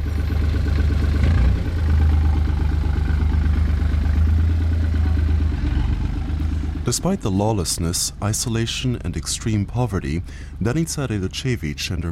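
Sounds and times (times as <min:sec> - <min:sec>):
car engines idling: 0:00.0 - 0:12.1
speech: 0:06.9 - 0:12.1.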